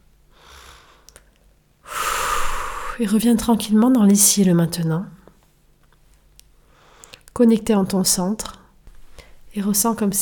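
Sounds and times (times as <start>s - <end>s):
deep breath: 0.3s - 1.1s, 1.8s - 3.0s
speech: 3.0s - 5.2s, 7.4s - 8.6s, 9.6s - 10.2s.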